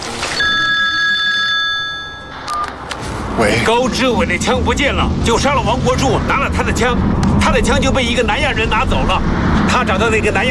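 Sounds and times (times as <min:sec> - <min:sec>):
telephone ringing: 0:00.3 - 0:02.8
speech: 0:03.4 - 0:10.5.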